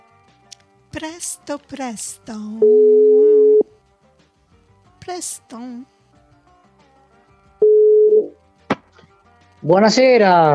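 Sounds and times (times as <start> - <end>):
speech: 0.9 - 3.0, 5.1 - 6.0, 9.6 - 10.5
telephone ringback tone during outgoing call: 2.6 - 3.7, 7.6 - 8.4.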